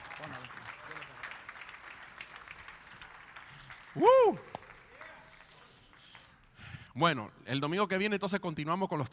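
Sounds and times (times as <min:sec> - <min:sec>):
church audience applauding: 0:00.0 - 0:06.5
single loud rising-and-falling whoop or whistle: 0:04.0 - 0:04.5
speech: 0:04.0 - 0:04.6, 0:07.0 - 0:09.1.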